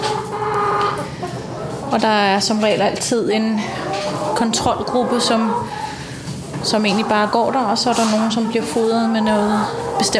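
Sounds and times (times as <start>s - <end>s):
constant hum: 0.0s - 10.1s
many hens clucking and murmuring indoors in a poultry house: 0.0s - 10.1s
speech: 1.9s - 5.8s, 6.6s - 10.1s.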